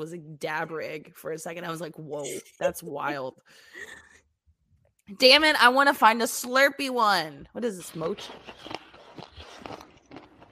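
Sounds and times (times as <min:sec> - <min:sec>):
speech: 0:00.0 - 0:04.1, 0:05.1 - 0:08.9
crunchy chewing from ASMR eating video: 0:08.0 - 0:10.4.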